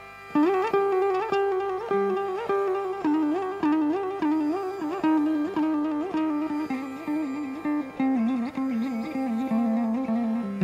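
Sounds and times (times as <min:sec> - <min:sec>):
tanam phrases in Hēmavati ālāpana: 0:00.0 - 0:10.6.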